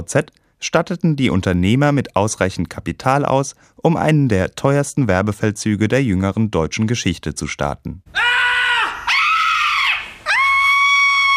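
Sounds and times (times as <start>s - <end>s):
speech: 0.0s - 8.6s
ecstatic screams from an online shop TV ad: 8.2s - 11.3s.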